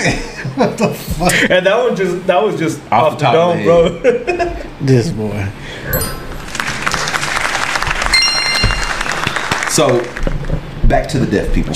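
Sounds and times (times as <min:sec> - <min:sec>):
speech: 0:00.0 - 0:06.2, 0:09.8 - 0:11.7
hand clapping: 0:06.4 - 0:10.5
thin whistle-like tone: 0:08.1 - 0:09.7.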